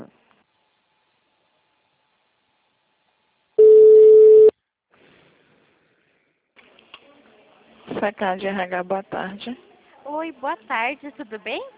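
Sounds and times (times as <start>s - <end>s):
telephone tone while a call is transferred: 3.6s - 4.5s
speech: 8.0s - 11.7s.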